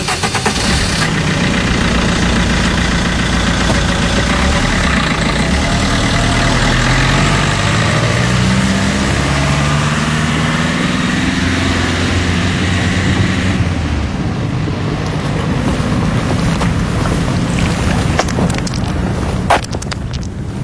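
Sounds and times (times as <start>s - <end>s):
boat engine idling on the port quays of Marseille: 0.0s - 9.6s, 14.0s - 20.5s
broad constant wash of harbour noise: 0.0s - 20.6s.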